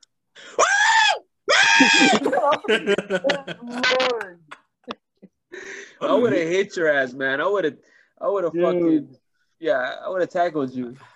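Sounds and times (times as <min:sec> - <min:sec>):
person vocally imitating a bleating scream: 0:00.6 - 0:02.3
speech: 0:01.8 - 0:05.0, 0:06.0 - 0:11.1
laughter: 0:01.8 - 0:06.3.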